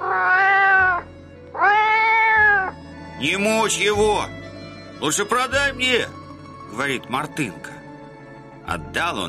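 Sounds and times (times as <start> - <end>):
cat with a rope around its neck meowing while being dragged: 0.0 - 2.8
speech: 3.2 - 4.4, 5.0 - 7.8, 8.7 - 9.2.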